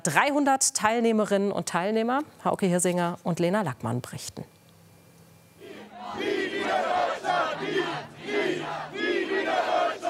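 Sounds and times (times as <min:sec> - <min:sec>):
speech: 0:00.0 - 0:04.6
crowd of demonstrators chanting while marching through city streets: 0:05.6 - 0:10.0.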